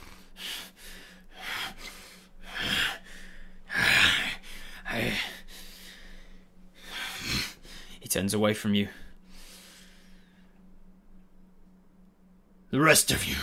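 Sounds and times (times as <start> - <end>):
heavy ragged panting breaths: 0.0 - 8.0
speech: 8.1 - 9.0, 12.8 - 13.4.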